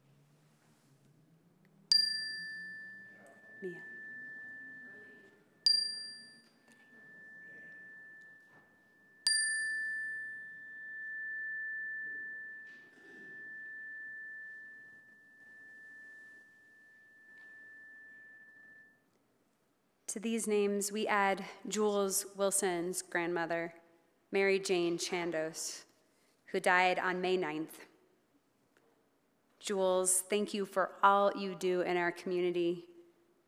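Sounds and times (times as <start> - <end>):
meditation chime ringing: 1.9 - 19.1
speech: 3.6 - 4.0, 20.1 - 25.9, 26.5 - 27.9, 29.6 - 32.9.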